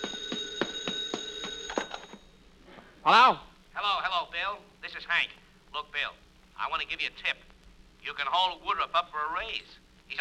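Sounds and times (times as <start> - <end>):
telephone bell ringing: 0.0 - 2.3
speech: 3.1 - 10.1.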